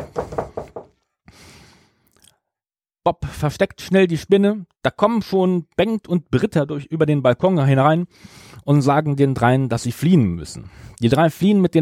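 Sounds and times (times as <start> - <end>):
security guards knocking on a hotel room door: 0.0 - 0.9
speech: 3.1 - 11.8.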